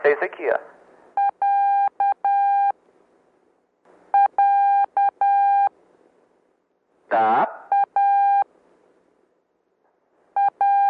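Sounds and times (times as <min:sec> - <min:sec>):
speech: 0:00.0 - 0:00.8
faint hiss: 0:00.0 - 0:10.6
Morse-style beep tones spelling the letter A: 0:01.2 - 0:02.8, 0:04.2 - 0:05.7, 0:07.7 - 0:08.5, 0:10.4 - 0:10.8.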